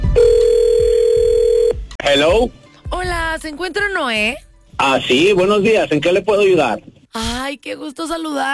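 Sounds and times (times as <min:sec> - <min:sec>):
steady high telephone line tone: 0:00.2 - 0:01.8
speech: 0:02.1 - 0:08.5.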